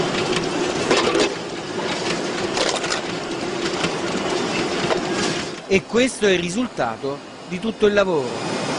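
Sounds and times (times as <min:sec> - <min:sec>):
recycling plant sorting rollers and conveyor rattling: 0:00.0 - 0:08.7
speech: 0:05.7 - 0:08.6.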